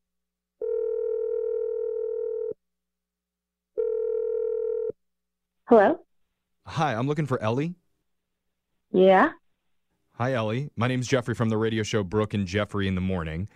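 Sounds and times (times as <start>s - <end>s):
long steady telephone ringing tones: 0.6s - 2.6s, 3.8s - 5.0s
speech: 5.7s - 6.0s, 6.7s - 7.8s, 8.9s - 9.4s, 10.2s - 13.5s.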